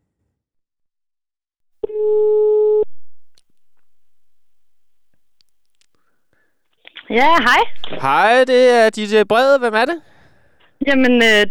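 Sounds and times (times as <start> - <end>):
telephone line ringing while placing a call: 1.8 - 2.9
speech: 2.0 - 2.3, 7.1 - 10.1, 10.8 - 11.4.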